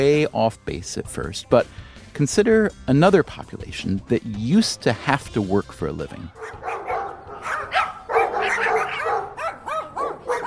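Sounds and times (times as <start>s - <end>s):
speech: 0.0s - 6.8s
dog barking excitedly: 6.4s - 10.4s.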